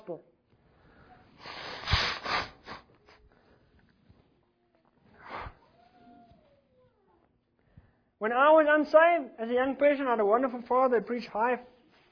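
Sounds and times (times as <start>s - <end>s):
speech: 0.1s - 0.3s, 8.2s - 11.8s
person blowing nose: 1.4s - 3.2s, 5.1s - 5.6s
small sniffs: 1.4s - 3.3s.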